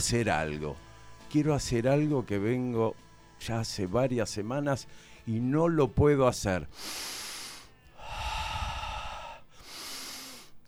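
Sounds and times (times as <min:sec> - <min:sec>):
speech: 0:00.0 - 0:07.2
slow deep breaths drawn in and pushed out: 0:04.9 - 0:05.3, 0:06.7 - 0:10.6.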